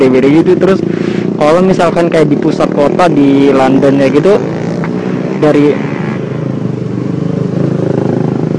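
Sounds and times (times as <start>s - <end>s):
speech: 0.0s - 4.6s, 5.4s - 5.9s
motorcycles roaring past: 0.0s - 8.5s.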